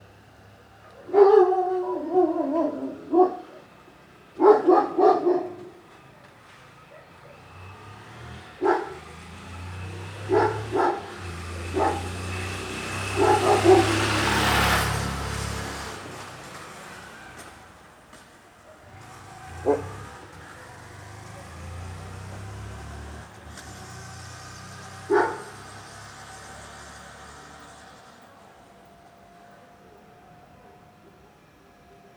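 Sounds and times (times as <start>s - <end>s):
large dog barking at night in a residential neighbourhood: 0.7s - 3.8s, 4.4s - 5.9s, 6.8s - 7.9s, 8.5s - 14.9s, 18.7s - 22.8s, 24.8s - 26.1s.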